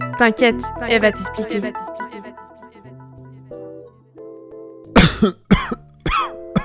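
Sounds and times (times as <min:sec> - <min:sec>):
speech: 0:00.2 - 0:02.0, 0:05.2 - 0:05.7
man coughing: 0:05.0 - 0:06.6.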